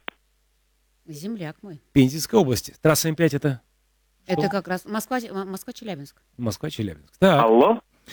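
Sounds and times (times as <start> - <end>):
speech: 1.1 - 3.7, 4.3 - 8.1
touch-tone beeps of a phone number being dialed: 4.3 - 4.6.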